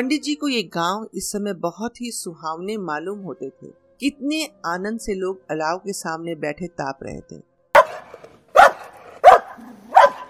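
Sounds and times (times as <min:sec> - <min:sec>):
speech: 0:00.0 - 0:07.5
dog barking on a footpath: 0:07.8 - 0:10.2.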